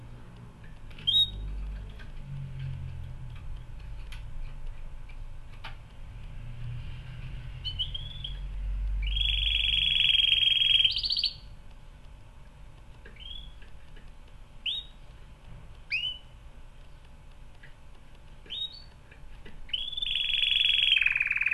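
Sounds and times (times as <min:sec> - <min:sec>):
canary chirping, warbling and trilling: 0:00.9 - 0:02.0, 0:07.5 - 0:11.6, 0:13.0 - 0:13.7, 0:14.6 - 0:15.0, 0:15.9 - 0:16.4, 0:18.4 - 0:21.5.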